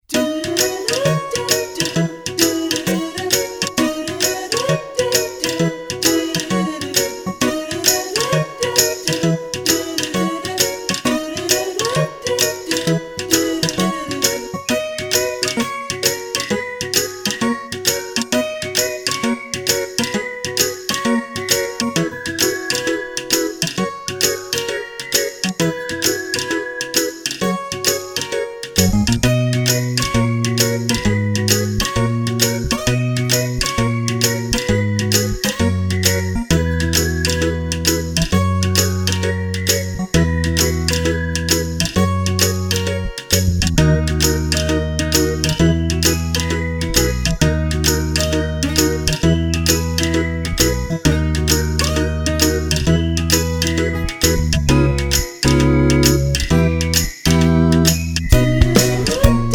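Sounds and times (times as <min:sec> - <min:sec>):
retro groovy vocals: 0:00.0 - 0:14.8, 0:58.3 - 0:59.5
retro groovy whimsical whistles: 0:07.4 - 0:28.0, 0:28.8 - 0:43.5, 0:44.3 - 0:59.5.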